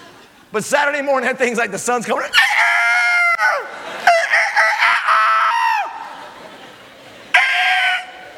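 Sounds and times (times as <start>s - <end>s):
speech: 0.5s - 2.4s
rooster crowing cock-a-doodle-doo: 2.6s - 6.0s
laughter: 3.1s - 8.3s.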